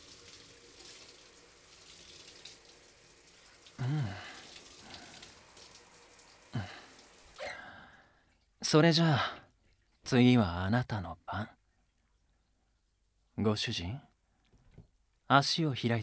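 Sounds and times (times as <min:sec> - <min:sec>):
shower water running: 0:00.0 - 0:07.5
speech: 0:08.7 - 0:09.4, 0:10.1 - 0:11.6, 0:13.4 - 0:14.1, 0:15.3 - 0:16.0.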